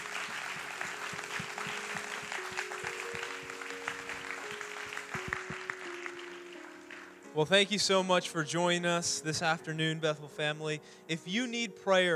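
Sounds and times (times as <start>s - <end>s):
audience applauding: 0.0s - 7.2s
speech: 7.4s - 12.1s.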